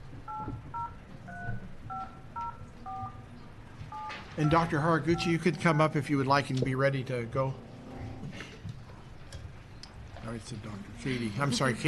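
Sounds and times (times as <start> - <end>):
telephone keypad touch-tone dual tone beeps: 0.3 - 3.2
speech: 4.4 - 7.7, 10.3 - 11.8.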